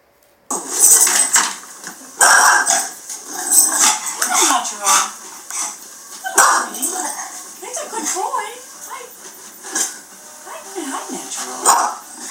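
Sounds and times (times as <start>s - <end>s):
clattery noise: 0.0s - 12.2s
dog barking: 2.2s - 3.0s, 3.8s - 7.9s, 11.4s - 12.2s.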